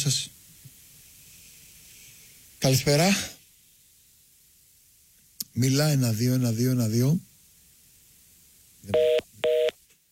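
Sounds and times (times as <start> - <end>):
speech: 0.0 - 0.4, 2.6 - 3.4, 5.6 - 7.3, 8.8 - 9.2
telephone busy tone beeps after a dropped call: 9.0 - 9.7.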